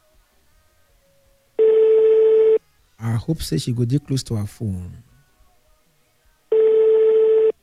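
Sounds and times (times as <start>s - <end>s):
phone ringback tone from a call placed during a live radio broadcast: 1.6s - 2.6s, 6.5s - 7.6s
speech: 3.2s - 5.1s.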